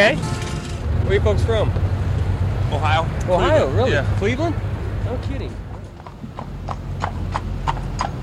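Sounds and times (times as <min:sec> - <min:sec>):
speech: 0:00.0 - 0:00.3, 0:01.1 - 0:01.9, 0:02.7 - 0:05.6
low constant rumble: 0:00.0 - 0:08.2
horse hooves clip-clopping pulling a carriage through a park: 0:05.6 - 0:08.2.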